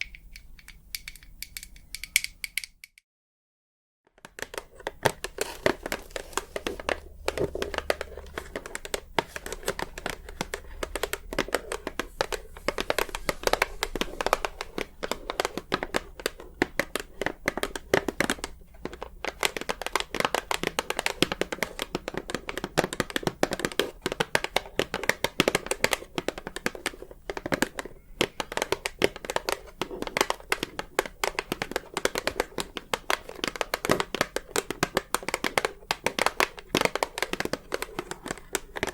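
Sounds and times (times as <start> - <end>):
long nails tapping on hard surfaces: 0.0 - 3.0, 4.2 - 38.9
crinkling: 4.2 - 38.9.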